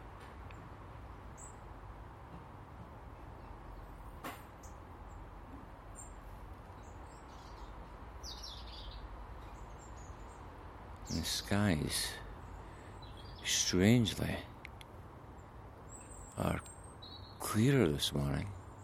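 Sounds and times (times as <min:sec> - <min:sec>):
outdoor noise: 0:00.0 - 0:18.8
flocks of birds chirping and calling flying overhead: 0:06.0 - 0:18.8
speech: 0:11.2 - 0:12.2, 0:13.7 - 0:14.5, 0:16.4 - 0:16.6, 0:17.5 - 0:18.6.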